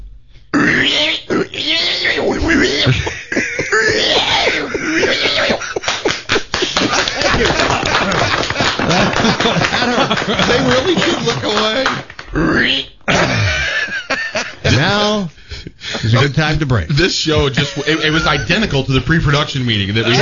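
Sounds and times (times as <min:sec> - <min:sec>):
person imitating pigs and piglets grunting and squealing: 0:00.5 - 0:05.8, 0:12.3 - 0:13.6
laughter: 0:02.2 - 0:12.1, 0:13.1 - 0:20.1
speech: 0:02.8 - 0:03.2, 0:16.2 - 0:20.1.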